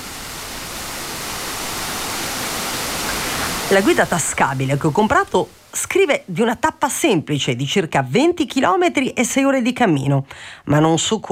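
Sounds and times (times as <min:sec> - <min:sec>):
waterfall rushing: 0:00.0 - 0:06.4
speech: 0:03.7 - 0:11.2.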